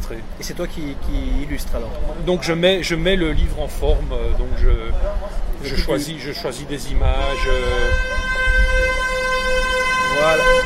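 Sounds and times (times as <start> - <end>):
low traffic rumble: 0.0 - 10.6
speech: 0.1 - 8.8, 10.2 - 10.6
car horn blast: 7.2 - 10.6.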